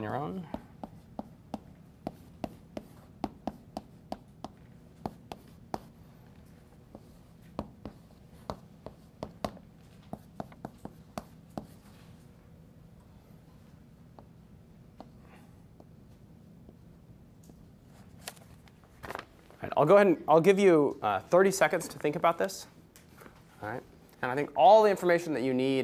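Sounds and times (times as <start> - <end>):
speech: 0.0 - 0.6, 19.8 - 22.8, 23.6 - 25.8
steady low hum: 0.0 - 25.8
writing on a board during a lecture: 0.4 - 12.0.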